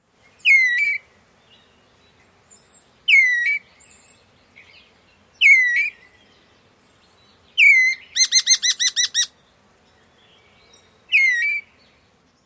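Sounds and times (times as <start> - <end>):
immature rose-breasted grosbeak turlee calls: 2.5 - 6.2, 7.0 - 9.4, 10.1 - 12.4.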